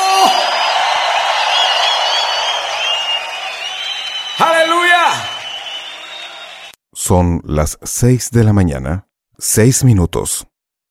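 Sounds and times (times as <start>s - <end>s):
crowd roaring with jubilant shouting and whooping: 0.0s - 6.7s
speech: 7.1s - 10.5s.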